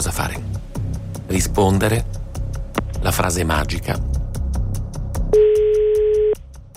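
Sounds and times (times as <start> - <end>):
speech: 0.0 - 0.7, 1.3 - 2.2, 3.0 - 4.1
rhythmic music: 0.0 - 6.7
phone ringing tone on an outgoing call: 5.4 - 6.4.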